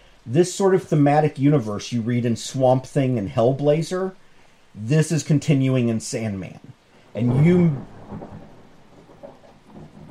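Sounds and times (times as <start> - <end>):
speech: 0.2 - 8.4
rolling thunder from an approaching storm: 7.0 - 10.0.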